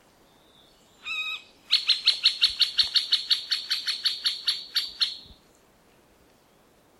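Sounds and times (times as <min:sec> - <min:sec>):
middle spotted woodpecker: 0:01.1 - 0:05.4.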